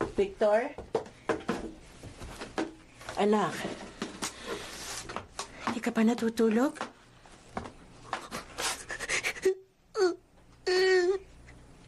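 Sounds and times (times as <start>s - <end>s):
speech: 0.2s - 0.8s, 3.2s - 3.7s, 5.8s - 6.9s
child crying softly with sobbing breaths and whimpering wails: 9.2s - 11.3s.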